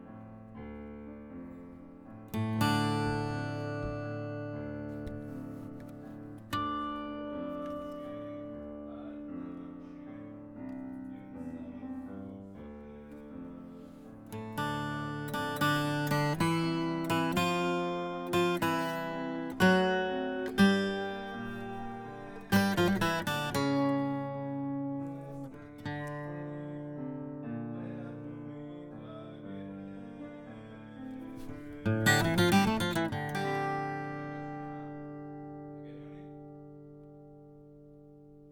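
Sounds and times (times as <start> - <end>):
guitar note A: 2.3 - 10.0, 14.3 - 26.6, 31.3 - 37.4.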